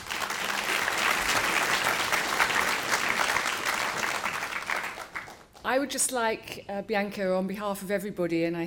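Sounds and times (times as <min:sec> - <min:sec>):
large audience applauding after a lecture: 0:00.0 - 0:05.6
speech: 0:05.7 - 0:08.6.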